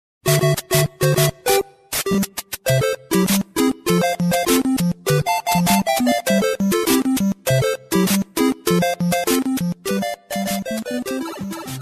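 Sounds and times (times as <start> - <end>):
game music ringtone: 0.2 - 11.7.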